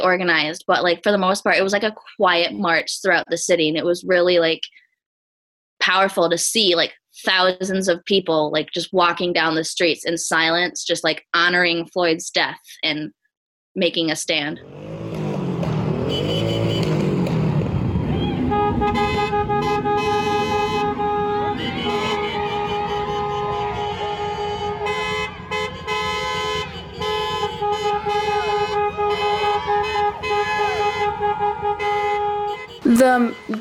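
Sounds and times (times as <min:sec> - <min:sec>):
speech: 0:00.0 - 0:04.8, 0:05.8 - 0:13.2, 0:13.8 - 0:15.0, 0:33.0 - 0:33.5
vehicle rumbling past: 0:14.6 - 0:32.8
car horns honking by a protest march: 0:14.8 - 0:17.6, 0:18.3 - 0:33.5.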